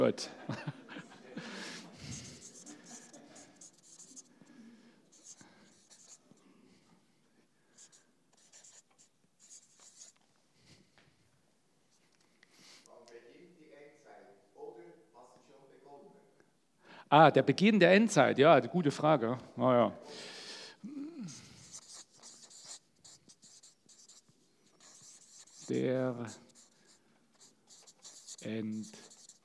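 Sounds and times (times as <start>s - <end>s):
speech: 0.0s - 0.8s, 17.1s - 20.3s, 25.7s - 26.4s, 28.4s - 29.0s
laughter: 0.2s - 3.6s
pen scratching across paper during handwriting: 1.6s - 4.5s, 5.1s - 6.4s, 7.8s - 10.2s, 21.2s - 29.4s.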